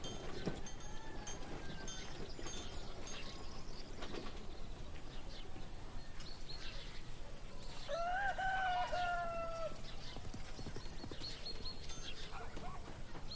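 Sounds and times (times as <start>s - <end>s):
horse cart clip-clopping in a busy town: 0.0s - 5.2s, 9.5s - 13.3s
faint bird notes: 0.0s - 13.3s.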